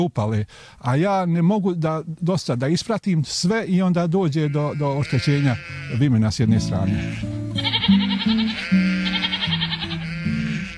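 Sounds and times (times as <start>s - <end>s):
speech: 0.0s - 8.8s
purebred Romanov sheep bleating: 4.4s - 10.7s.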